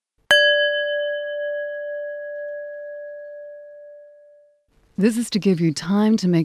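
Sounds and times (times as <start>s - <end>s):
single bell struck as a pause cue with a clear pure tone: 0.3s - 4.4s
speech: 5.0s - 6.4s.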